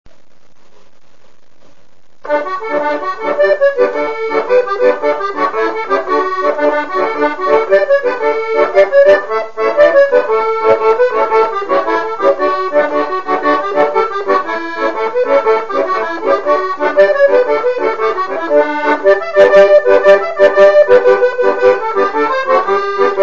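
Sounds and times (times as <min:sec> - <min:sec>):
musette accordion music: 0:02.3 - 0:23.2.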